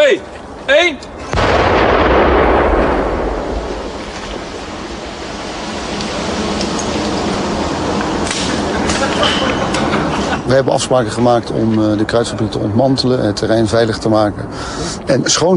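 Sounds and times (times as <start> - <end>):
open-air noise: 0.0 - 15.5
speech: 0.1 - 1.8, 10.5 - 15.5
heavy explosion from a controlled detonation of found grenades: 1.3 - 6.6
laughter: 8.6 - 10.7.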